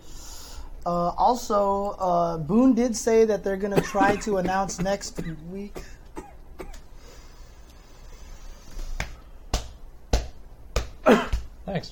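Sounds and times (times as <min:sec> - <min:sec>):
speech: 0:00.8 - 0:06.0, 0:11.1 - 0:11.9
hand pounding on a coughing person's back: 0:09.0 - 0:11.9.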